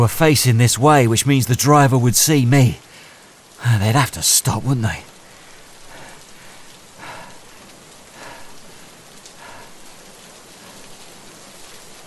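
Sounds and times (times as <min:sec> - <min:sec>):
speech: 0:00.0 - 0:02.8, 0:03.6 - 0:05.1
heavy rain pouring on a road: 0:00.0 - 0:12.0.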